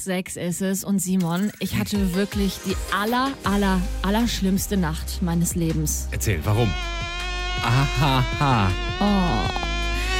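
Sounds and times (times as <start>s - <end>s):
speech: 0.0s - 7.0s, 7.6s - 9.6s
voice imitating a mosquito's whining buzz: 7.6s - 10.1s.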